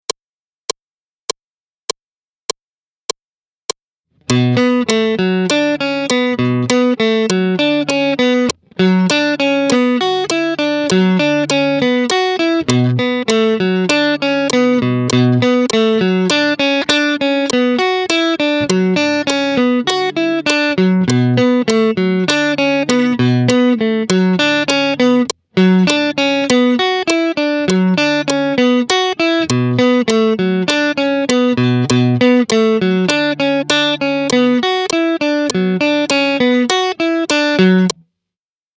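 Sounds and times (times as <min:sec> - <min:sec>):
solo guitar at 100 bpm: 0:04.2 - 0:38.0.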